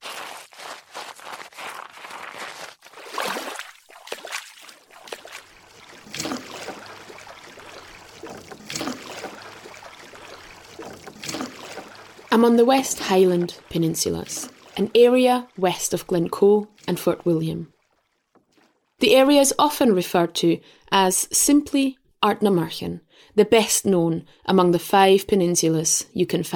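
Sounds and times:
kayak hull scraping and shuffling over the shore: 0:00.0 - 0:18.7
slow paddle strokes: 0:00.0 - 0:18.9
gentle water lapping: 0:00.0 - 0:19.8
kayak sliding into water: 0:02.8 - 0:14.8
speech: 0:12.4 - 0:17.7, 0:19.0 - 0:26.5.

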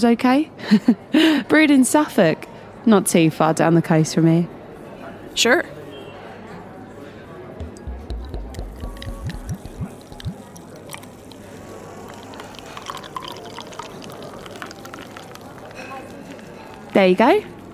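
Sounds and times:
speech: 0:00.0 - 0:04.6, 0:05.4 - 0:05.8, 0:17.0 - 0:17.5
murmur of indistinct voices: 0:01.8 - 0:17.7
Adnams beer brewed in Suffolk glugging into a glass: 0:07.6 - 0:17.0.

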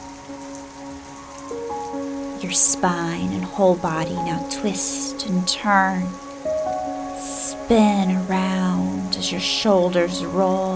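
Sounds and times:
steady rain pattering across a surface: 0:00.0 - 0:10.7
speech: 0:02.4 - 0:06.3, 0:07.7 - 0:10.7.

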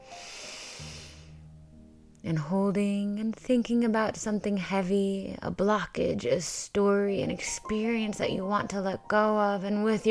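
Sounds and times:
steady inhalation through the nose: 0:00.0 - 0:01.4
speech: 0:02.2 - 0:10.1.

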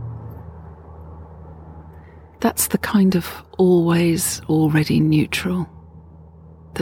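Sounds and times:
engine hum: 0:00.0 - 0:06.8
low rumble of traffic: 0:00.0 - 0:06.8
speech: 0:02.4 - 0:05.8.

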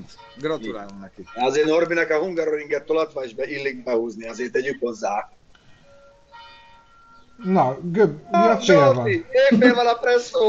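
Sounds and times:
church bell tolling at noon: 0:00.0 - 0:04.4, 0:05.7 - 0:09.2
speech: 0:00.0 - 0:05.4, 0:07.4 - 0:10.4.

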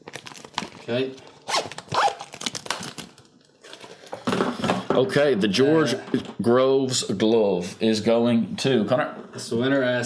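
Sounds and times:
rummaging in a plastic pencil case: 0:00.0 - 0:04.9
speech: 0:00.8 - 0:01.7, 0:05.0 - 0:10.0
zipper opening on a see-through plastic pencil case: 0:01.4 - 0:02.4.

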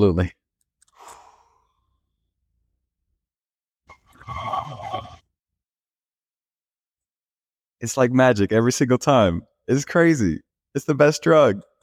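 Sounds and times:
speech: 0:00.0 - 0:00.4, 0:07.8 - 0:11.8
man taking a deep breath: 0:00.9 - 0:02.2.

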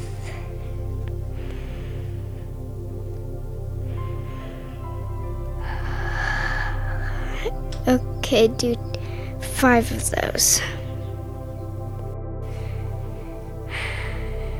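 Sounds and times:
deep breath drawn in during a children's meditation: 0:00.0 - 0:08.2, 0:12.4 - 0:14.5
steady low drone: 0:00.0 - 0:14.5
speech: 0:07.9 - 0:10.8.

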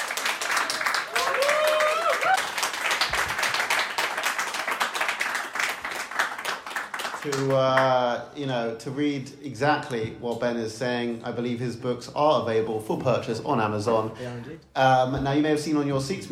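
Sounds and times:
audience applause: 0:00.0 - 0:07.8
faint whoops from the crowd: 0:01.1 - 0:02.5
speech: 0:07.2 - 0:16.3.

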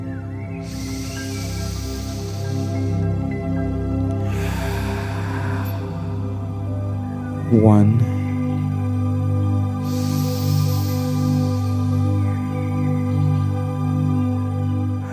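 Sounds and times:
steady low musical drone: 0:00.0 - 0:15.1
deep deliberate breaths during a morning meditation: 0:00.6 - 0:07.3, 0:08.0 - 0:15.1
speech: 0:07.5 - 0:08.1.

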